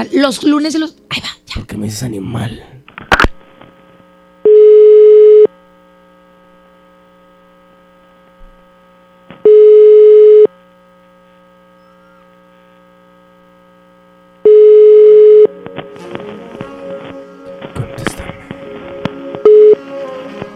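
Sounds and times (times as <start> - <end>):
speech: 0.0 - 2.8
telephone ringback tones of a call ringing out to voicemail: 4.4 - 5.5, 9.4 - 10.5, 14.4 - 15.5, 19.4 - 19.8.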